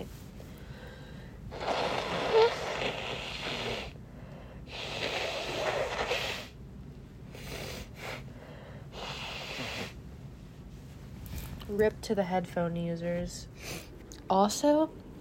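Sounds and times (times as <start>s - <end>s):
person blowing nose: 1.5s - 4.0s, 4.7s - 6.6s, 8.9s - 10.0s
person sniffing: 1.6s - 4.0s, 4.7s - 6.6s, 8.9s - 10.0s
speech: 11.8s - 15.0s.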